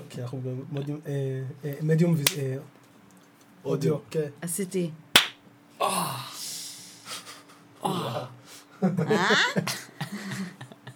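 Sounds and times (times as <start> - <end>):
speech: 0.2 - 2.8, 3.6 - 5.1, 7.8 - 10.2
hand slapping a cheek: 5.2 - 5.4.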